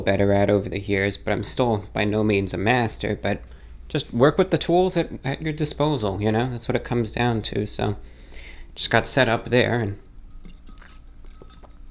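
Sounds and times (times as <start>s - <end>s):
speech: 0.0s - 8.1s, 8.7s - 10.0s
low hum: 0.0s - 11.8s
person sipping water: 10.2s - 11.8s.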